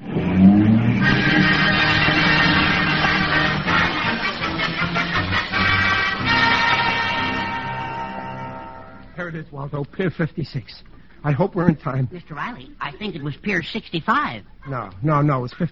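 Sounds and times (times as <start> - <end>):
taxi engine revving hard as it roars away: 0.0 - 8.7
taxi tires squealing and skidding across the road: 0.0 - 8.7
speech: 9.4 - 15.6.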